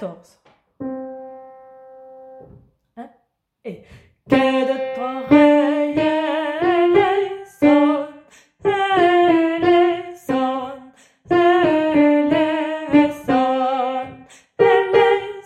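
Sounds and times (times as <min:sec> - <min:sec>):
alto and bass voices singing a Kyrie: 0:04.3 - 0:15.4.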